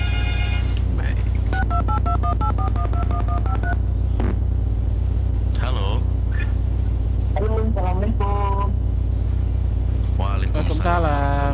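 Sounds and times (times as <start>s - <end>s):
low constant hum: 0.0s - 11.5s
telephone line click as the line picks up: 0.6s - 4.3s
telephone keypad beeps: 1.5s - 3.8s.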